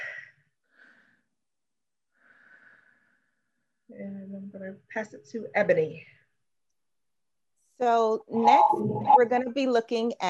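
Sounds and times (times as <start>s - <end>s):
soft human breathing: 0.0s - 1.4s, 2.1s - 3.6s
speech: 3.9s - 6.2s, 7.8s - 10.2s.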